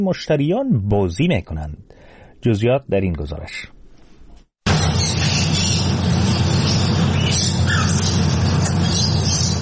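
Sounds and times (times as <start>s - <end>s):
speech: 0.0s - 3.8s
steady busy room hum in a tea house: 3.7s - 9.5s
canaries and talking parrots chirping and twittering inside a tea house in Bangkok: 4.7s - 9.5s.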